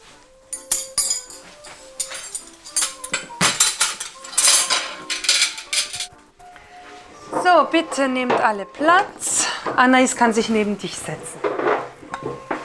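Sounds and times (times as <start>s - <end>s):
cutlery and dishes clinking, metal striking china: 0.5s - 6.1s, 11.4s - 12.6s
speech: 7.6s - 11.7s.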